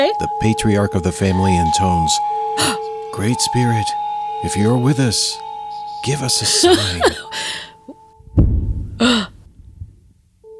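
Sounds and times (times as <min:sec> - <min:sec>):
speech: 0:00.0 - 0:07.7
laughter: 0:04.5 - 0:08.0
person gasping sharply: 0:06.6 - 0:07.9, 0:09.0 - 0:09.4
dull low thud: 0:08.2 - 0:10.1.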